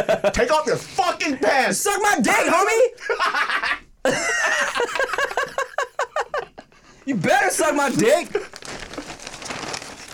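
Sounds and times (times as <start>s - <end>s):
speech: 0.0s - 5.2s, 7.1s - 8.6s
laughter: 3.0s - 6.7s
paper bag crinkling and rustling: 7.5s - 10.1s.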